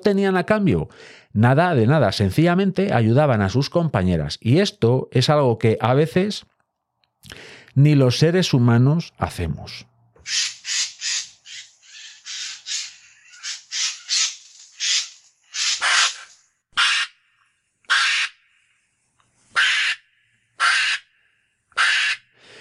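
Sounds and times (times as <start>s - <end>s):
speech: 0.0s - 6.5s, 7.2s - 10.5s
Eurasian jay screeching: 10.2s - 17.1s, 19.6s - 20.0s, 21.8s - 22.2s.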